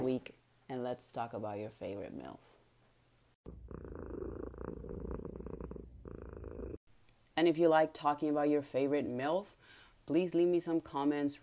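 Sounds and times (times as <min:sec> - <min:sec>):
speech: 0:00.0 - 0:02.6, 0:07.4 - 0:11.4
cat purring: 0:03.4 - 0:06.8.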